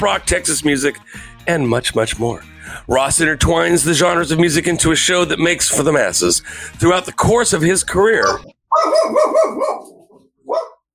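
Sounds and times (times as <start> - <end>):
speech: 0.0 - 9.9
dog barking with tonal yelping barks: 8.2 - 10.9.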